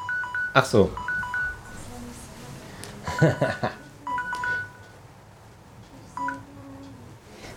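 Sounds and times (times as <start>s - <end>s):
phone timer alarm beeping in short electronic tone pairs: 0.0s - 1.8s, 3.2s - 5.0s, 6.2s - 6.4s
speech: 0.6s - 1.1s, 3.2s - 3.8s
burst of laughter: 3.0s - 3.9s.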